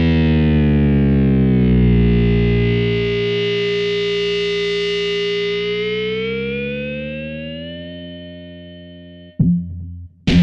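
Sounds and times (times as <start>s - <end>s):
Yamaha S90 synthesizer Metal Mute tone: 0.1s - 10.3s.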